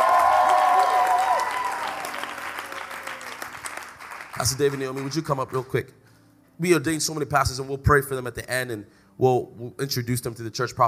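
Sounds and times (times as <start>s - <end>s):
congregation applauding: 0.0s - 5.8s
speech: 4.4s - 6.0s, 6.6s - 10.8s.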